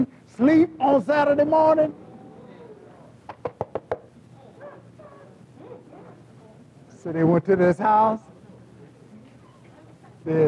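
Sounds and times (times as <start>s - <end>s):
speech: 0.0s - 2.0s, 7.0s - 8.3s, 10.2s - 10.4s
faint voices: 1.9s - 3.3s, 4.2s - 7.1s, 8.2s - 10.4s
sharp knocks on a house door: 3.4s - 4.1s.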